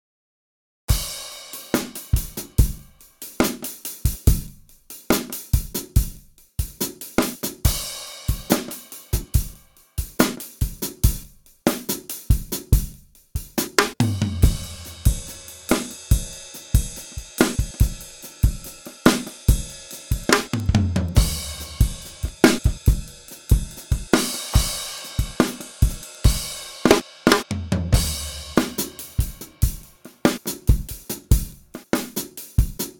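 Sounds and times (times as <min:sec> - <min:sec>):
pop drums: 0:00.9 - 0:32.9.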